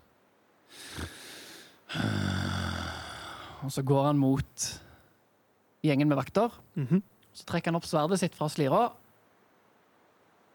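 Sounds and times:
deep noisy breath in: 0:00.7 - 0:02.0
long voiced groaning sigh: 0:00.7 - 0:03.6
speech: 0:03.6 - 0:04.8, 0:05.8 - 0:09.0.

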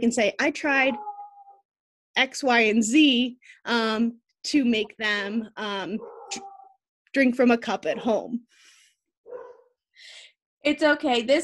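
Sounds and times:
speech: 0:00.0 - 0:01.1, 0:02.2 - 0:06.5, 0:07.1 - 0:08.7, 0:10.0 - 0:11.4
faint dog barking in the background: 0:00.9 - 0:01.6, 0:06.0 - 0:06.8, 0:09.3 - 0:09.8.

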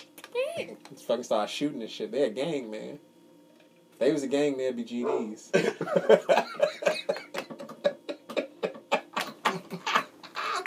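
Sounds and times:
speech: 0:00.3 - 0:03.1, 0:04.0 - 0:07.2
man wheezing with hard laughter: 0:05.0 - 0:10.4.

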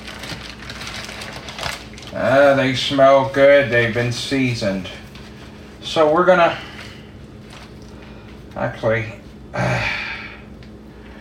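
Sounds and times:
paper wrapping crinkling as ribs are unwrapped: 0:00.0 - 0:08.3
speech: 0:02.1 - 0:05.0, 0:06.0 - 0:06.7, 0:08.6 - 0:10.0.

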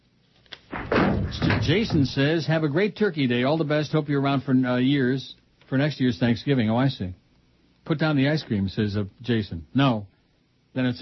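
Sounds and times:
door being knocked down: 0:00.7 - 0:02.2
speech: 0:01.3 - 0:07.2, 0:07.9 - 0:10.1, 0:10.8 - 0:10.9.

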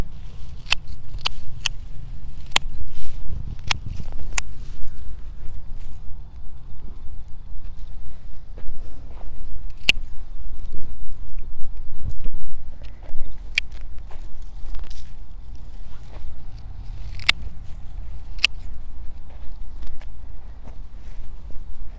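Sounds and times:
hoe scraping while weeding a carrot bed: 0:00.0 - 0:06.0, 0:14.0 - 0:19.7
low steady rumble outdoors: 0:00.0 - 0:21.9.

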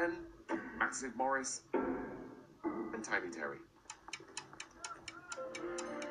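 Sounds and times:
speech: 0:00.9 - 0:02.0, 0:03.0 - 0:04.2
clock ticking: 0:02.8 - 0:06.0.

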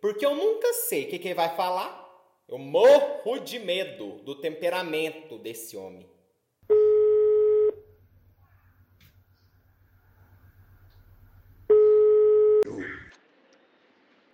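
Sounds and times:
speech: 0:00.0 - 0:06.8
phone line ringback tone while placing a call: 0:06.7 - 0:07.8, 0:11.7 - 0:12.6
faint low hum: 0:06.7 - 0:12.9.

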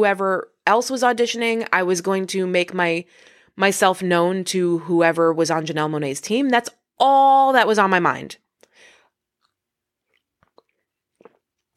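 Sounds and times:
speech: 0:00.0 - 0:08.4
small wet mouth clicks and gulps: 0:08.5 - 0:11.7
person sipping a drink: 0:09.0 - 0:11.7.

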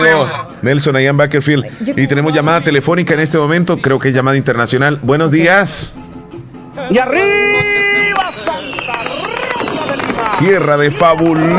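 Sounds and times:
speech: 0:00.0 - 0:06.0, 0:06.8 - 0:07.5, 0:10.4 - 0:11.5
sustained whistling whine of fireworks rockets: 0:08.2 - 0:10.2.

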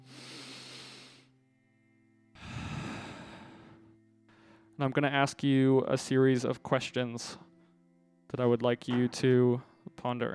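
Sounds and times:
group taking a deep breath together: 0:00.0 - 0:01.3, 0:02.4 - 0:04.7
speech: 0:04.8 - 0:07.5, 0:08.3 - 0:10.3.

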